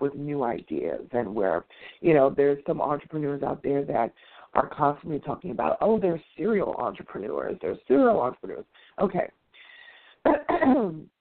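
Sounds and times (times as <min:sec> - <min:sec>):
speech: 0:00.0 - 0:09.4, 0:10.2 - 0:11.1
sharp coughs: 0:10.3 - 0:11.0
raspy voiced throat clearing: 0:10.3 - 0:11.1.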